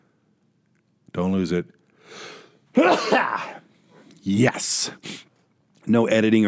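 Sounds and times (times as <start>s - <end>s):
speech: 1.2s - 3.6s, 4.2s - 6.4s
person sneezing: 2.2s - 3.7s, 4.9s - 5.3s.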